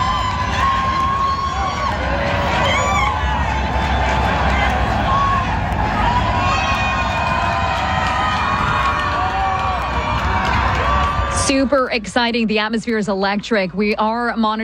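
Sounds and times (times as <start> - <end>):
large home crowd roaring outside a stadium: 0.0 - 11.7
speech: 11.6 - 14.6.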